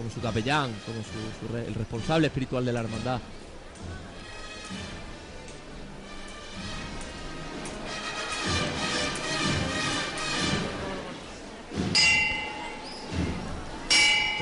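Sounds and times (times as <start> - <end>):
speech: 0.0 - 4.1
murmur of crowd noise and voices at a procession: 0.0 - 14.4
clanging bell strikes signalling a procession float being lowered: 11.9 - 12.9, 13.9 - 14.4.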